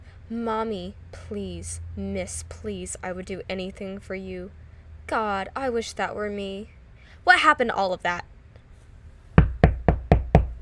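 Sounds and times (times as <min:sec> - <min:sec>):
speech: 0:00.3 - 0:08.3
heavy thuds pounding on a locked door: 0:09.4 - 0:10.6.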